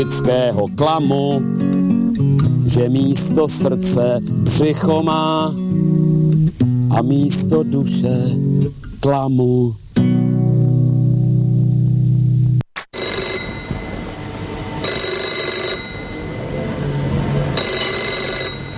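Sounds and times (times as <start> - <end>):
speech: 0.0 - 6.0, 6.9 - 10.2
music: 0.0 - 12.6
telephone ringing: 13.0 - 16.5, 17.6 - 18.7.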